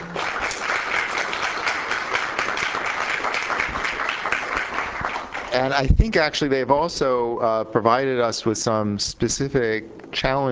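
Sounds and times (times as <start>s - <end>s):
audience applause thanking a panel at a conference session: 0.0s - 5.8s
speech: 5.5s - 10.5s.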